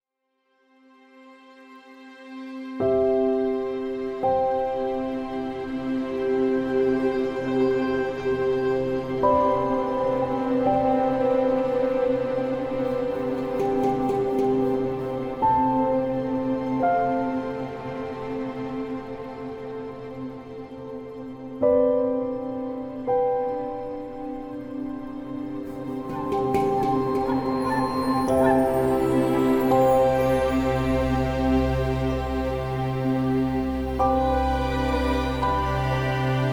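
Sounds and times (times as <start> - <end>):
cinematic orchestral score: 2.9 - 36.5.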